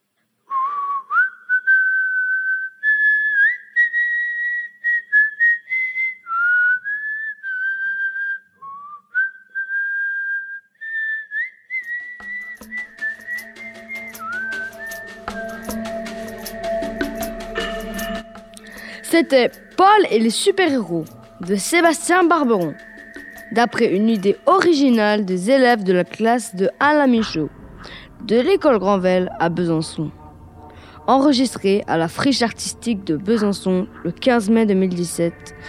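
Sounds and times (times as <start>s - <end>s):
person whistling a lilting tune: 0.5s - 21.9s
backing music with a steady beat: 12.2s - 25.1s
speech: 19.1s - 22.9s, 23.5s - 27.6s, 28.3s - 30.2s, 31.1s - 35.6s.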